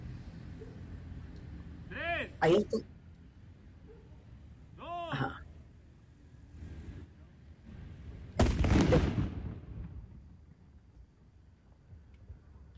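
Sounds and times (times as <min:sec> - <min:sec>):
speech: 0:02.2 - 0:02.9
grenade exploding near a terminal in a played video: 0:08.4 - 0:10.1.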